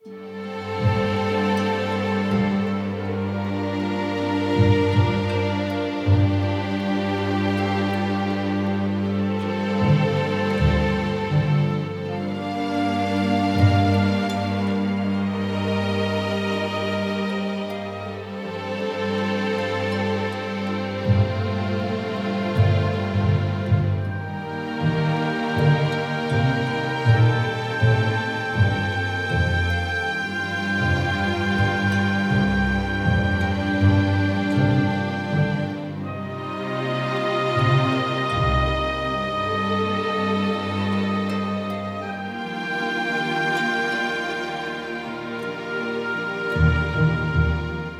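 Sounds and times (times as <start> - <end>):
harp: 0.0 - 47.9
strings: 0.0 - 47.9
woodwinds: 0.0 - 47.9.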